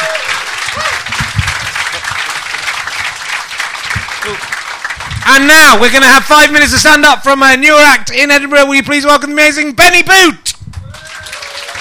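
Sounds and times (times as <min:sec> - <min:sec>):
faint voices and whoops: 0:00.0 - 0:01.0, 0:10.8 - 0:11.7
large audience applause: 0:00.0 - 0:05.7, 0:10.8 - 0:11.7
speech: 0:05.3 - 0:10.5.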